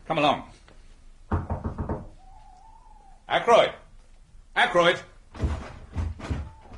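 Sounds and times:
speech: 0.1 - 0.6, 3.3 - 3.8, 4.6 - 5.5
sharp knocks on a locked wooden door: 1.3 - 2.1, 5.4 - 6.7.

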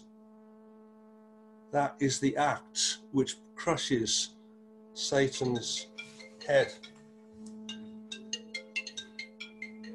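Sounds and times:
steady low hum: 0.0 - 9.9
speech: 1.7 - 4.4, 5.0 - 6.9
mobile phone ringtone electronic beeps: 5.7 - 7.0, 7.7 - 9.9.

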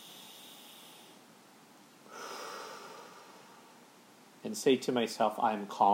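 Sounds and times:
slow deep breathing to calm down: 0.0 - 1.3, 2.0 - 4.0
speech: 4.4 - 5.9.

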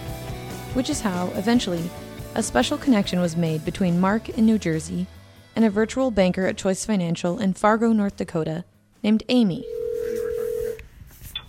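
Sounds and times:
speech: 0.7 - 9.8
electronic phone ring heard through the line: 9.6 - 10.8.

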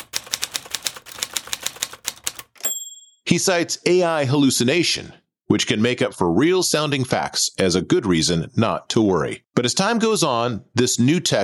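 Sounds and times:
typewriter keys clacking: 0.0 - 2.7
speech: 3.3 - 11.4.

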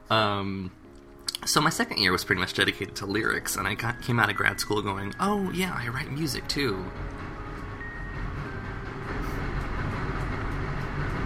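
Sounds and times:
speech: 0.1 - 0.8, 1.4 - 7.4
train wheels rumbling on track: 2.6 - 11.2.

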